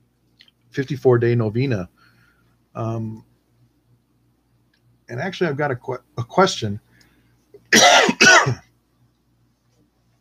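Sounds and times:
speech: 0:00.8 - 0:02.1, 0:02.8 - 0:03.3, 0:05.1 - 0:06.8
person clearing throat: 0:07.7 - 0:08.6.

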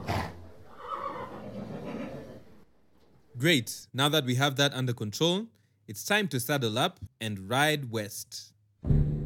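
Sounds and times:
horse whinnying: 0:00.0 - 0:02.5
speech: 0:03.4 - 0:09.1.

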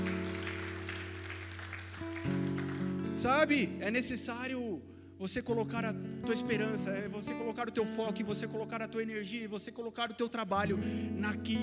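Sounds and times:
audience applauding: 0:00.0 - 0:03.2
speech: 0:03.2 - 0:11.6.

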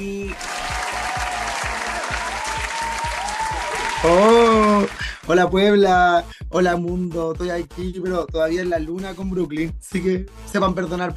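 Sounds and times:
faint cheering: 0:00.2 - 0:05.2
large audience applause: 0:00.3 - 0:05.2
speech: 0:04.0 - 0:11.1.

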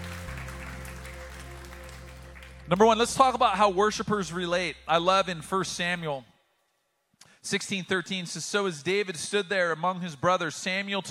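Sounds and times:
audience at a church service applauding: 0:00.0 - 0:03.7
speech: 0:02.7 - 0:06.3, 0:07.4 - 0:11.0.

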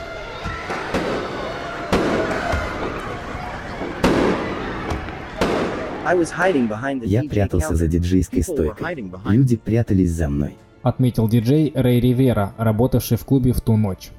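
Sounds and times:
crowd murmuring in a club: 0:00.0 - 0:09.2
gunshots in a club: 0:00.7 - 0:03.0, 0:04.0 - 0:06.8
speech: 0:06.1 - 0:14.1.

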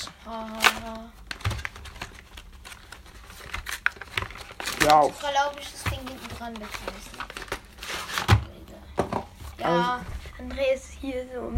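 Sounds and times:
packaging crinkling and tearing as a trading card deck box is opened: 0:00.0 - 0:08.6
speech: 0:00.2 - 0:01.0, 0:04.8 - 0:07.2, 0:09.6 - 0:11.5.

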